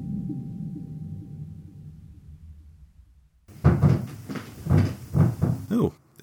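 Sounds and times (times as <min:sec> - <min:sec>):
cat knocking with loud thumps: 0:03.5 - 0:05.8.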